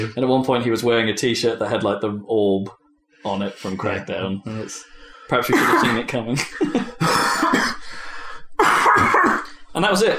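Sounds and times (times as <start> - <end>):
speech: 0.0 - 8.0, 9.8 - 10.1
harsh coughs: 5.5 - 6.0, 7.0 - 7.8, 8.6 - 9.6
raspy throat clearing: 5.5 - 6.0, 7.0 - 7.8, 8.6 - 9.6.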